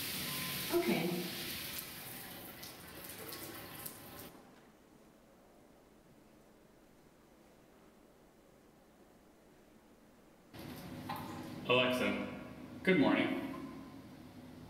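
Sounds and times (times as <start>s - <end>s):
shower running water: 0.0s - 4.4s, 10.6s - 12.1s
speech: 0.7s - 1.4s, 12.9s - 13.4s.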